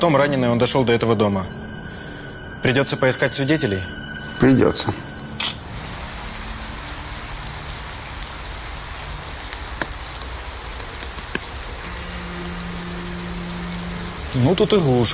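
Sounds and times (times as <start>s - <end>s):
speech: 0.0s - 1.6s, 2.6s - 5.6s, 14.4s - 15.1s
steady rain falling in a remote backwoods area: 0.0s - 15.1s
scattered rain drop clicks: 5.4s - 5.6s.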